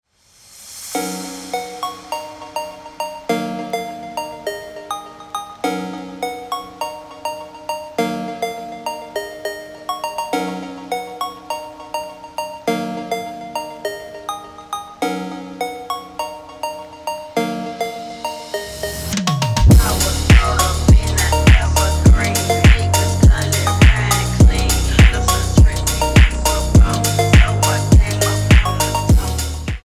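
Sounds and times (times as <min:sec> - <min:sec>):
slowed ringtone: 0:01.0 - 0:29.7.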